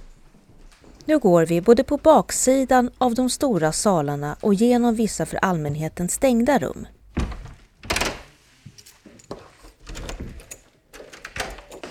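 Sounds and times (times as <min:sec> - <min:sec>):
speech: 0:01.1 - 0:07.0
heavy wooden palace double doors banging shut in a reverberant room: 0:07.0 - 0:08.3, 0:09.8 - 0:11.8.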